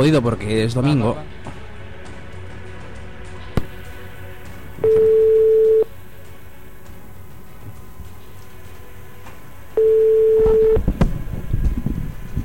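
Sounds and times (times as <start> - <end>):
speech: 0.0 - 1.4
steady low hiss: 3.6 - 12.4
telephone ringing tones of an outgoing call: 4.8 - 5.9, 9.8 - 10.8.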